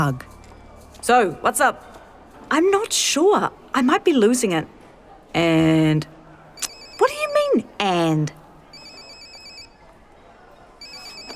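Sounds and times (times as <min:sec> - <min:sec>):
speech: 0:00.0 - 0:00.3, 0:01.0 - 0:08.4
faint murmur: 0:00.0 - 0:11.3
mobile phone ringing in a food court: 0:06.6 - 0:07.6, 0:08.7 - 0:09.8, 0:10.8 - 0:11.3.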